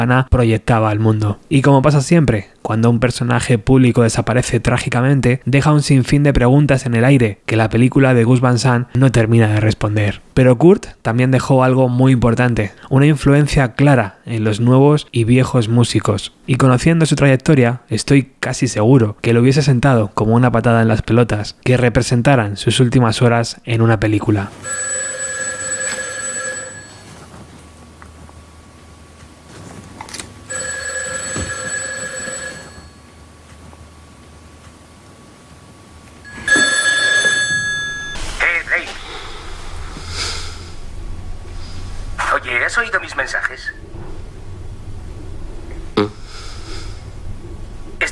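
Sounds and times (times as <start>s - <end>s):
speech: 0.0s - 25.0s
telephone ringing with trills: 24.5s - 27.3s, 30.4s - 33.2s, 36.2s - 39.1s
indistinct voices: 38.2s - 48.1s.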